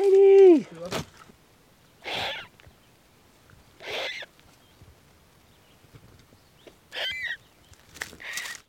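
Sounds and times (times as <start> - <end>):
two fluffy turkey vulture chicks hissing in a nest: 2.0 - 2.5, 3.8 - 4.3.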